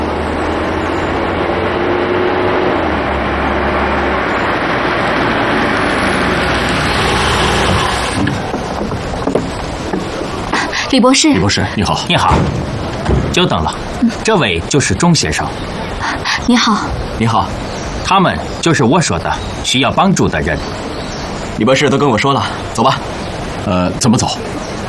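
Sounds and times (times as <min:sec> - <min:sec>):
car pulling up with engine running: 0:00.0 - 0:10.3
broad road noise: 0:00.0 - 0:24.8
clunks: 0:07.1 - 0:10.7, 0:12.1 - 0:14.6
speech: 0:10.9 - 0:21.0, 0:21.6 - 0:24.6.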